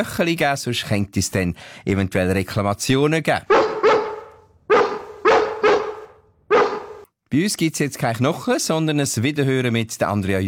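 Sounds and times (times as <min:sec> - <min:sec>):
speech: 0:00.0 - 0:03.8, 0:07.3 - 0:10.4
dog barking: 0:03.4 - 0:07.1.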